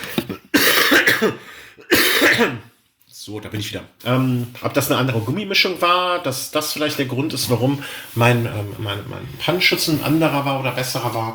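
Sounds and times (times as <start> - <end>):
person coughing hard with harsh rasping bursts: 0.1 - 2.7
speech: 1.2 - 11.3.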